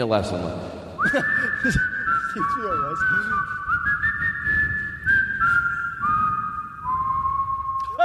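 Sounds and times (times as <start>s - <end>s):
speech: 0.0s - 3.9s
person whistling a slow wavering off-key melody in heavy reverb: 1.0s - 8.0s.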